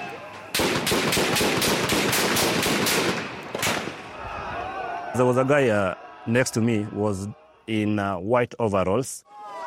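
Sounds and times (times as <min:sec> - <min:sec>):
rapid gunfire bursts: 0:00.6 - 0:03.3
speech: 0:05.2 - 0:09.3.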